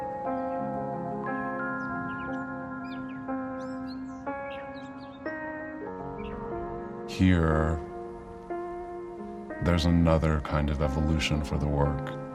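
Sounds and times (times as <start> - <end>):
sustained tonal music with shifting chords: 0.0 - 12.3
many small birds chirping and tweeting: 1.4 - 10.1
speech: 7.2 - 7.9, 9.6 - 12.2.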